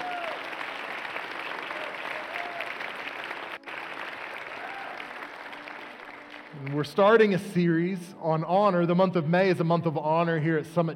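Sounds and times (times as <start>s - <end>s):
faint cheers: 0.0s - 0.7s, 1.5s - 3.0s, 4.4s - 5.2s
large church audience applauding: 0.0s - 7.4s
speech: 6.6s - 10.9s.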